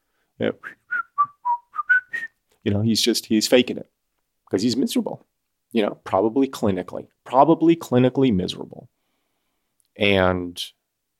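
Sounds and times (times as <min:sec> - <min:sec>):
speech: 0:00.4 - 0:00.8, 0:02.6 - 0:03.9, 0:04.5 - 0:09.0, 0:10.0 - 0:10.8
person whistling a short tune: 0:00.6 - 0:02.4.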